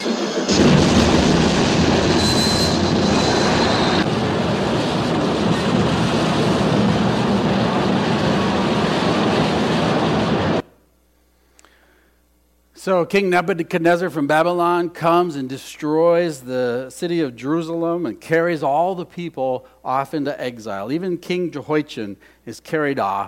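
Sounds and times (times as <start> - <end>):
train wreck roar: 0.0 - 10.6
heavy rumbling and grinding of a train wreck: 0.3 - 10.6
metallic screech: 1.9 - 4.0
speech: 12.8 - 23.2.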